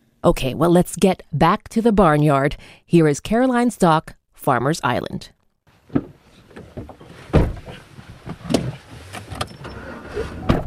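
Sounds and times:
speech: 0:00.2 - 0:05.4
farm truck door thudding and rattling: 0:05.9 - 0:09.6
farm truck window cranking: 0:05.9 - 0:10.6.

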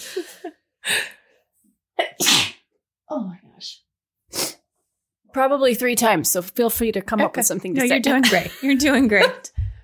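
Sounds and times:
person sneezing: 0:02.0 - 0:02.7
speech: 0:03.2 - 0:03.8, 0:05.4 - 0:09.6.

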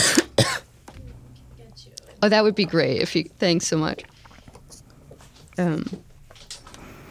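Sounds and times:
coughing from a tickle in throat: 0:00.0 - 0:00.7
quiet rustling: 0:00.8 - 0:07.0
speech: 0:02.2 - 0:04.1, 0:05.6 - 0:06.1.

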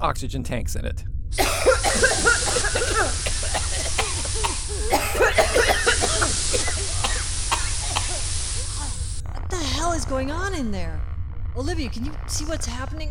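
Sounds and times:
speech: 0:00.0 - 0:02.3, 0:09.9 - 0:13.0
group coughing and choking: 0:01.4 - 0:09.2.

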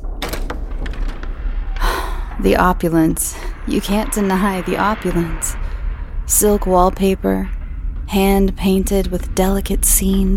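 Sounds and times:
door latch clunk: 0:00.0 - 0:01.4
swinging door knocks and rattles: 0:00.0 - 0:01.8
door opening: 0:00.0 - 0:02.4
steady low rumble: 0:00.0 - 0:10.3
speech: 0:02.4 - 0:05.6, 0:06.3 - 0:10.3.

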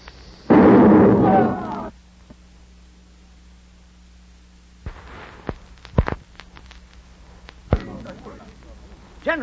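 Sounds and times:
sharp thuds and pops: 0:00.5 - 0:01.2, 0:04.8 - 0:08.6
cannon blast with fuse lit by a cigarette: 0:00.5 - 0:01.9, 0:04.9 - 0:06.2, 0:07.7 - 0:08.2.

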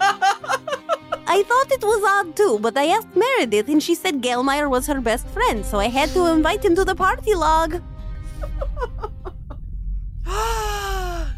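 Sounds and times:
laughter: 0:00.0 - 0:01.4, 0:08.3 - 0:09.6
speech: 0:01.4 - 0:07.9
woman gasping: 0:10.3 - 0:11.3.

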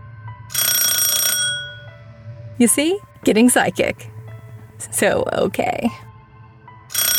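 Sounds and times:
telephone bell ringing: 0:00.5 - 0:02.0, 0:06.9 - 0:07.1
speech: 0:02.6 - 0:04.1, 0:04.8 - 0:06.1.

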